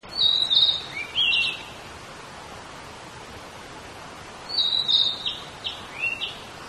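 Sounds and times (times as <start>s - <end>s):
Narcissus flycatcher singing: 0.1s - 1.8s, 4.4s - 6.6s.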